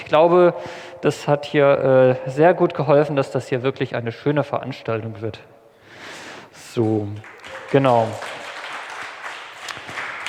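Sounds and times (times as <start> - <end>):
speech: 0.1 - 5.6, 6.8 - 8.3
audience clapping at an outdoor event: 7.1 - 10.2.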